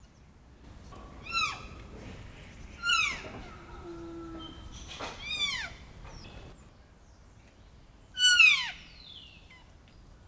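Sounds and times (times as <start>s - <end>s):
female Cervus elaphus canadensis calling: 1.2s - 1.7s, 2.8s - 4.6s, 8.2s - 8.8s.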